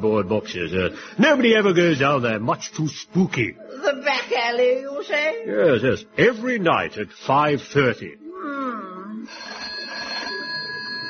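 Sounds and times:
speech: 0:00.0 - 0:08.2
bedside telephone ringing with warbling electronic tone: 0:09.3 - 0:11.0.

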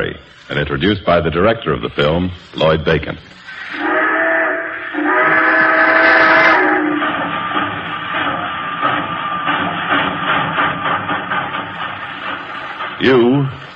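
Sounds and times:
speech: 0:00.0 - 0:03.8, 0:13.0 - 0:13.7
steam locomotive chuffing as it pulls away: 0:00.0 - 0:13.7
steam locomotive whistle: 0:03.5 - 0:07.2.

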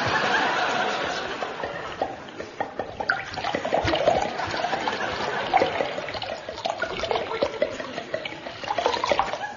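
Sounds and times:
laughter: 0:00.0 - 0:02.9, 0:04.0 - 0:06.4, 0:08.9 - 0:09.5
liquid pouring into a glass: 0:02.8 - 0:09.4.

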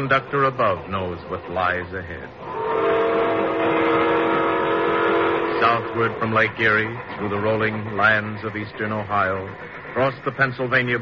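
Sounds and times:
speech: 0:00.0 - 0:02.9, 0:05.6 - 0:11.0
train rumbling through countryside: 0:00.0 - 0:11.0.

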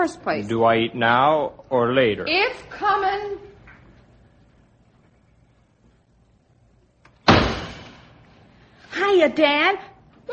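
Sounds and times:
speech: 0:00.0 - 0:03.5, 0:09.0 - 0:10.3
door slamming shut: 0:07.2 - 0:08.2.

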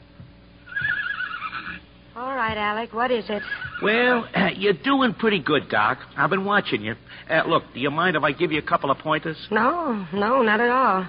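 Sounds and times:
horse neighing in a shed: 0:00.7 - 0:01.9, 0:03.4 - 0:04.2
speech: 0:02.2 - 0:11.0.

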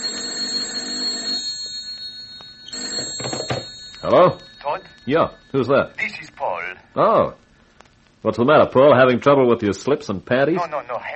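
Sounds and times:
telephone ringing with a shrill trilling bell: 0:00.0 - 0:05.6
speech: 0:04.1 - 0:06.2, 0:07.0 - 0:07.4, 0:08.2 - 0:11.1.

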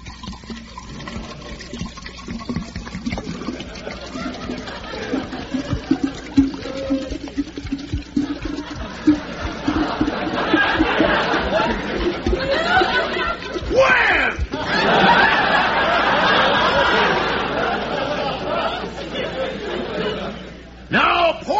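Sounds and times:
small shot of liquor gurgling into a glass: 0:00.0 - 0:14.6
laughter: 0:03.2 - 0:20.6.

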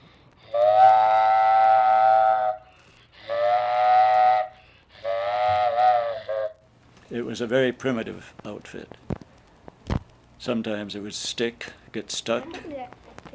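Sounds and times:
child imitating a freight train whistle: 0:00.4 - 0:06.6
speech: 0:07.1 - 0:09.1, 0:10.4 - 0:13.1.

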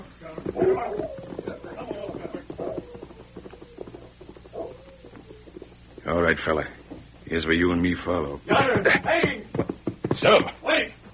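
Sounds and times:
faint rhythmic clatter: 0:00.0 - 0:11.1
dog whimpering: 0:02.3 - 0:05.7
speech: 0:06.3 - 0:09.2, 0:10.2 - 0:10.6.

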